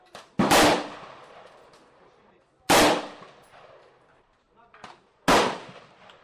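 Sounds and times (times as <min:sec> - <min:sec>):
AR-15 rifle shots fired at an outdoor shooting range: 0:00.2 - 0:01.6, 0:02.7 - 0:03.8, 0:05.3 - 0:06.2.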